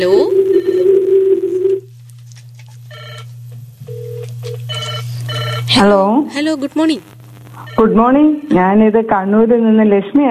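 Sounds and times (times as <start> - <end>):
speech: 0.0 - 0.4, 5.8 - 7.1, 7.8 - 10.3
low constant hum: 0.0 - 10.3
telephone ringing for an incoming call to a radio show: 0.1 - 1.8, 2.9 - 3.3, 3.9 - 5.7.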